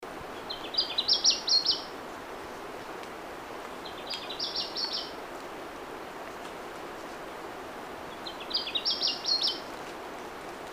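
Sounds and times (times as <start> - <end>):
background hiss: 0.0 - 10.7
Papuan scrubwren twittering calls: 0.4 - 1.9, 3.7 - 5.1, 8.1 - 9.7.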